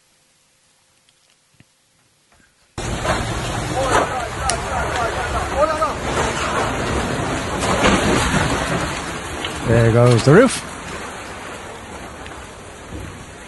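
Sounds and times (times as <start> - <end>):
heavy rain in an intense storm: 2.8 - 13.4
low thunder rumbling in an intense storm: 2.8 - 13.4
speech: 9.7 - 10.7.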